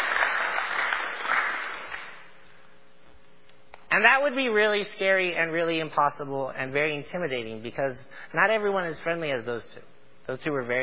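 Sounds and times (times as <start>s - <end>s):
crowd applauding: 0.0s - 2.3s
speech: 4.0s - 10.8s.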